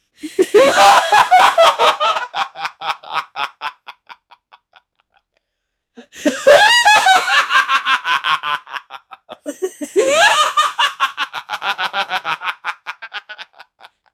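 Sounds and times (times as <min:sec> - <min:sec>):
uncanny creepy high laughter: 0:00.4 - 0:04.9, 0:06.0 - 0:13.9.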